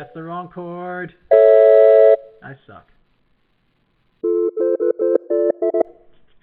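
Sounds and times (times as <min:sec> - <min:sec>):
speech: 0:00.0 - 0:01.7, 0:02.4 - 0:03.0
telephone ringing with a loud electronic ringtone: 0:01.3 - 0:02.2, 0:04.2 - 0:05.9.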